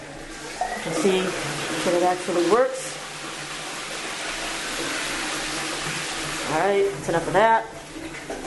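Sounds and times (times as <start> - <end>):
automatic toilet flushing: 0.0 - 8.4
speech: 0.8 - 3.0, 6.5 - 7.8.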